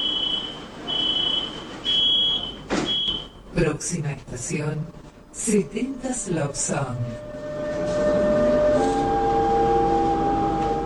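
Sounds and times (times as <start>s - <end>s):
subway train pulling into a station: 0.0s - 10.8s
speech: 3.6s - 7.4s
sustained metallic squealing of a slowing subway train: 7.0s - 10.8s.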